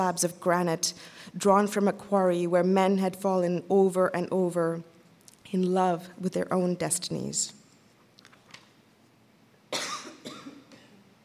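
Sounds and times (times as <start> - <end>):
speech: 0.0 - 4.9, 5.5 - 7.6
person coughing harshly: 9.7 - 11.1.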